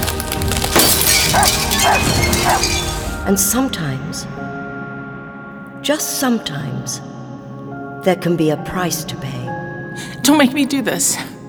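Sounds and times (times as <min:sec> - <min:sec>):
bright tinkling glass shards scattering: 0:00.0 - 0:03.5
glass shattering: 0:00.0 - 0:03.6
speech: 0:03.3 - 0:04.4, 0:05.8 - 0:07.1, 0:08.0 - 0:09.5, 0:10.2 - 0:11.4.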